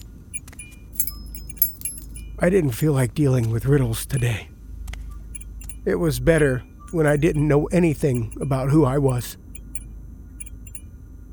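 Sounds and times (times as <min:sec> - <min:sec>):
keys jingling as they are grabbed from a table: 0:00.0 - 0:02.4, 0:05.4 - 0:05.9, 0:06.9 - 0:09.8, 0:10.4 - 0:10.8
low steady rumble: 0:00.0 - 0:11.3
speech: 0:02.4 - 0:04.5, 0:05.8 - 0:09.4.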